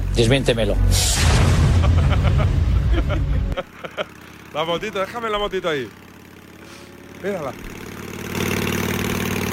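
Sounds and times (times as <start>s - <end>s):
speech: 0.2s - 6.0s, 7.2s - 7.8s
laughter: 1.6s - 4.5s
lawnmower-type small engine idling: 3.6s - 9.5s.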